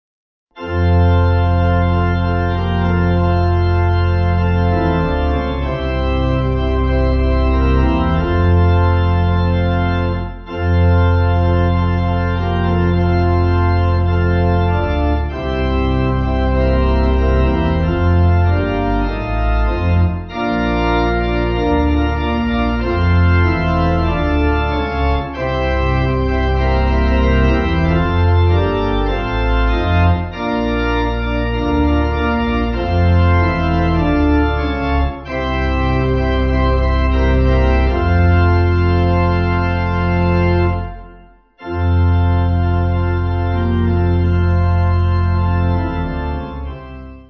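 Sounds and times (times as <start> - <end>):
pipe organ: 0.5 - 47.2.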